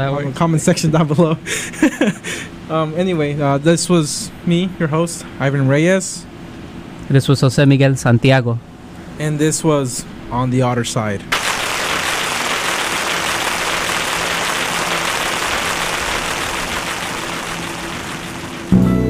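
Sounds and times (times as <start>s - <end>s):
speech: 0.0s - 6.3s, 7.1s - 11.4s
steady dense hiss of rain: 11.3s - 18.9s.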